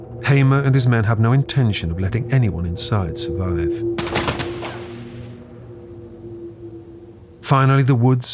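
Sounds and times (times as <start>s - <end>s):
speech: 0.2s - 4.2s, 7.5s - 8.3s
rapid volley of gunshots: 4.0s - 5.2s.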